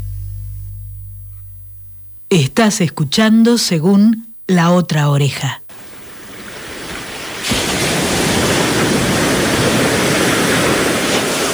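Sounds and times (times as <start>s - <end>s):
speech: 2.3s - 5.6s
ocean waves on a beach at Mar del Plata: 5.7s - 11.5s.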